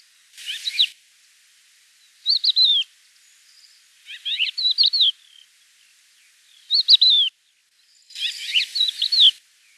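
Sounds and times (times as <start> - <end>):
crested lark whistled call: 0.4 - 1.0, 2.2 - 2.9, 4.0 - 5.4, 6.6 - 7.4, 8.1 - 9.4.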